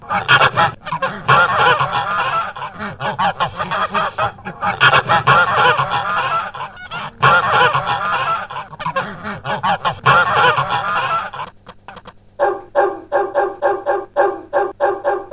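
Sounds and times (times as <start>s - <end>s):
flock of geese honking: 0.0s - 14.4s
laughter: 0.1s - 12.0s.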